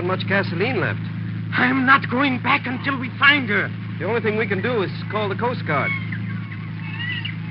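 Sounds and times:
speech: 0.0 - 6.1
steady low droning hum: 0.0 - 7.5
seagulls crying: 4.0 - 7.5.

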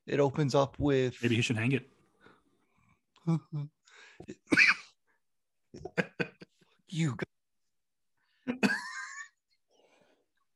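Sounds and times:
speech: 0.1 - 2.0, 3.2 - 4.7, 6.9 - 7.2
person coughing: 4.3 - 5.0, 8.5 - 9.4.

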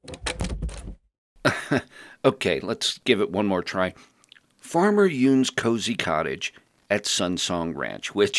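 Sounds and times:
door shutting with a low thud: 0.1 - 1.0
speech: 1.4 - 8.3.

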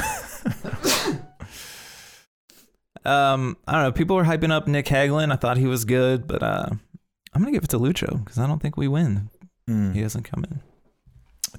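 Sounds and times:
person sneezing: 0.7 - 1.4
gasping inhales: 0.8 - 2.8
long breathy exhale: 0.9 - 2.7
speech: 3.1 - 10.7.

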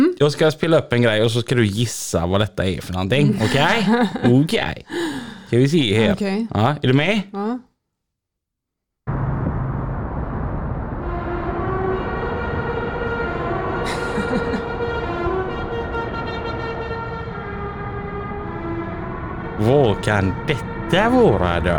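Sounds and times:
speech: 0.2 - 7.7, 19.6 - 21.7
laughter: 3.1 - 4.8, 13.8 - 15.2
truck engine rumble: 9.1 - 21.7
musical truck horn playing a tune: 11.0 - 21.7.

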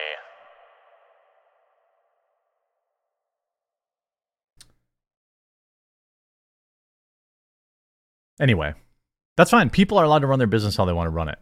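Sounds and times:
single spoken word drenched in heavy reverb: 0.0 - 2.1
speech: 8.4 - 8.8, 9.4 - 11.3.

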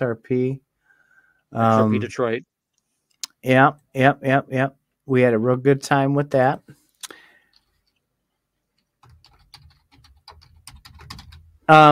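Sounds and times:
speech: 0.0 - 0.6, 1.5 - 2.5, 3.4 - 6.8, 11.7 - 11.9
typing on a computer keyboard: 8.8 - 11.5.

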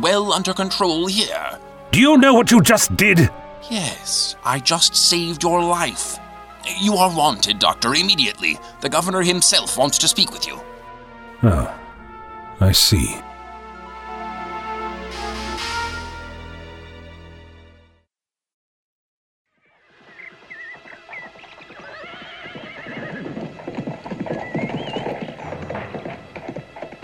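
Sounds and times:
speech: 0.0 - 10.7, 11.4 - 11.8, 12.6 - 13.3
many horses' hooves clip-clopping: 20.3 - 27.0
horse whinnying loudly: 21.8 - 23.4.

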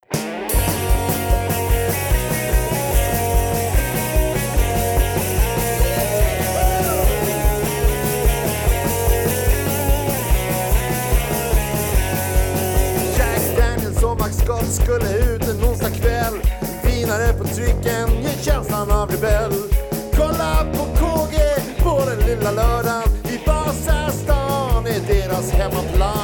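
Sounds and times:
distorted guitars: 0.0 - 26.2
pounding drums: 0.4 - 26.2.

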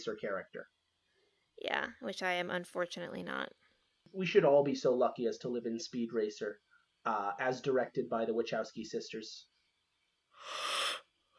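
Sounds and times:
speech: 0.0 - 0.8, 1.6 - 9.5, 10.4 - 11.0
breathy yawn swelling into a long airy exhale: 10.4 - 11.3.

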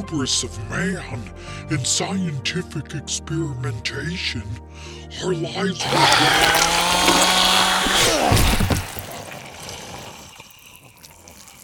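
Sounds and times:
speech: 0.0 - 8.8
chainsaw running and shutting off: 5.8 - 10.7.

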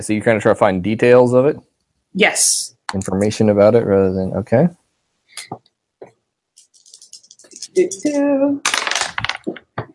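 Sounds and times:
speech: 0.0 - 4.8, 7.8 - 8.8
dice thrown onto a hard floor clattering: 6.6 - 9.6.

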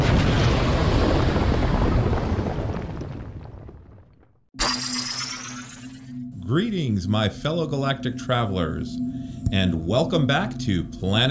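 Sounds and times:
explosion sound effect: 0.0 - 6.0
speech: 6.5 - 11.3.

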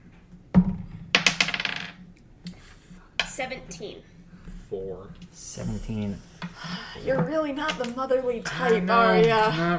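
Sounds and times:
dice clattering across a hard tabletop: 1.1 - 2.1, 7.2 - 8.0
speech: 3.4 - 4.1, 4.7 - 9.7.

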